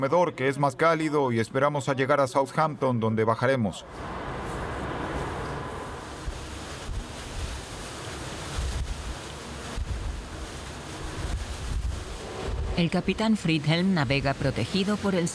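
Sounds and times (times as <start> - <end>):
speech: 0.0 - 4.3, 12.8 - 15.3
rough sea churning: 3.8 - 15.3
heavy waves surging and thudding: 3.9 - 15.3
gusting wind buffeting the microphone: 4.1 - 12.8.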